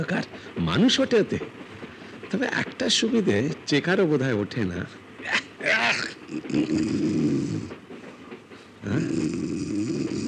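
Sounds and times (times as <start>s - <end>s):
speech: 0.0s - 1.7s, 2.3s - 7.8s
person snoring while asleep in a dark empty railway carriage: 6.3s - 7.7s, 8.9s - 10.2s.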